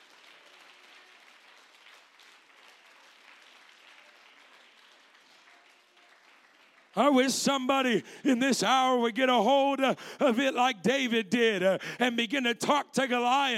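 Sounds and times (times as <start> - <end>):
church audience clapping to praise God: 0.0 - 9.4
speech: 7.0 - 13.5.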